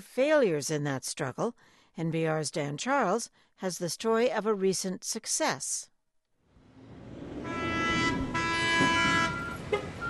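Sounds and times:
speech: 0.0 - 5.9
low rumble of heavy engines and traffic: 6.6 - 10.0
loud horn blasts at a seaport: 7.4 - 10.0.

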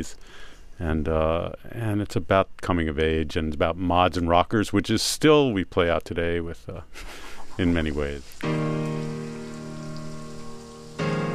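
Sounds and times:
speech: 0.0 - 9.1
steady rain falling in a dense patter: 7.4 - 11.3.

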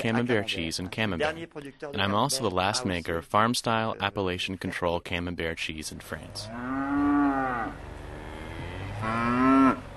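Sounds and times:
speech: 0.0 - 6.9, 9.0 - 9.5
cow mooing: 6.5 - 9.9.

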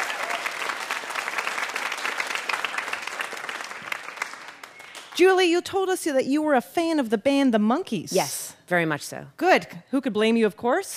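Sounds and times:
audience applause: 0.0 - 5.2
speech: 5.2 - 10.9.

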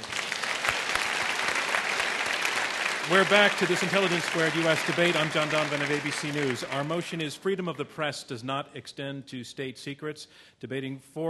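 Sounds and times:
audience applause at a live debate event: 0.0 - 7.2
speech: 3.1 - 11.2.

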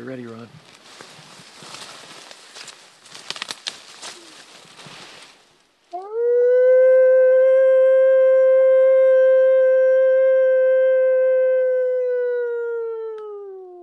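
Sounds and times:
speech: 0.0 - 0.8
rustling: 0.0 - 6.1
naturalist imitating a wolf howl by a roadside near a beaver dam: 5.9 - 13.8.

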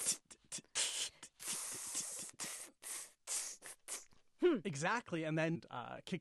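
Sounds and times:
voice beatboxing an inhaled open hi-hat: 0.0 - 4.6
speech: 4.4 - 6.1.

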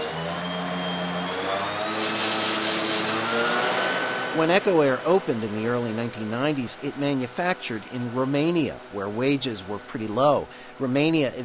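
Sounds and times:
alternator whining and humming on a heat and engine pressure test machine: 0.0 - 11.4
speech: 4.4 - 11.4.

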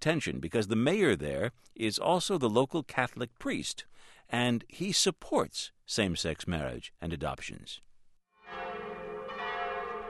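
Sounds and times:
speech: 0.0 - 7.9
church bells ringing on a Sunday in a small farming village in Brittany: 8.4 - 10.0.

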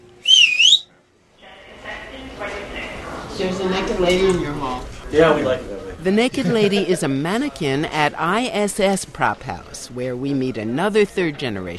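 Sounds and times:
room noise: 0.0 - 11.7
loud piercing whistle rising and falling in pitch: 0.2 - 0.9
voices: 1.3 - 11.7
speech: 3.4 - 11.7.

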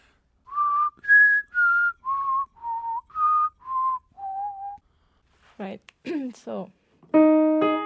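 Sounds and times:
person whistling a short melody: 0.5 - 4.8
speech: 5.6 - 7.7.

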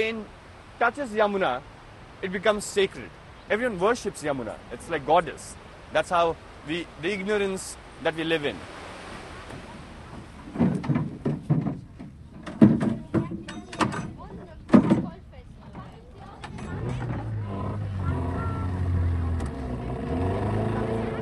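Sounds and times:
speech: 0.0 - 8.8
boat motor on a river: 0.0 - 21.2
wooden knocks and thumps: 9.4 - 17.8.

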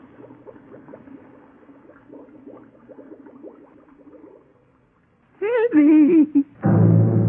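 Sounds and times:
air bubbles from a valve gurgling up through water: 0.0 - 5.1
speech: 5.7 - 7.1.

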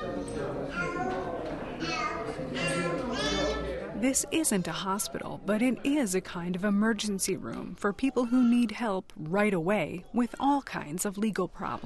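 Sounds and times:
toddler singing a nursery rhyme: 0.1 - 3.7
speech: 4.0 - 11.8.

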